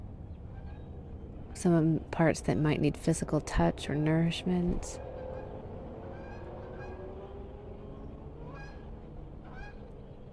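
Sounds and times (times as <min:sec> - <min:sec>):
outdoor noise: 0:00.0 - 0:10.3
speech: 0:01.6 - 0:05.1
two Canada geese giving alarm honks: 0:08.5 - 0:10.3.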